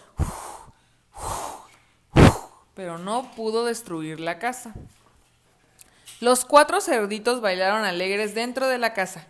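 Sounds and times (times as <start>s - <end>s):
voice imitating a wolf huffing and blowing: 0.0s - 2.7s
speech: 2.8s - 5.0s, 6.2s - 9.2s.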